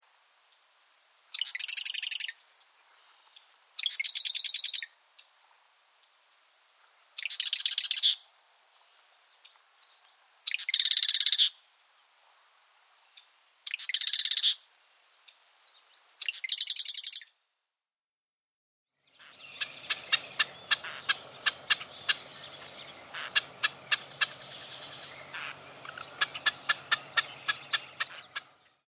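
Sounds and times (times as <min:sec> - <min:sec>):
Eastern marsh wren singing: 0:00.4 - 0:06.6, 0:07.2 - 0:08.2, 0:09.1 - 0:11.5, 0:13.7 - 0:14.6, 0:16.1 - 0:17.2, 0:19.0 - 0:28.8.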